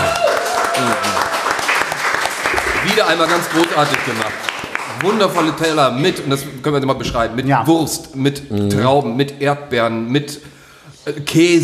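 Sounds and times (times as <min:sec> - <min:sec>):
group applauding at a tasting: 0:00.0 - 0:06.1
speech: 0:03.0 - 0:11.6.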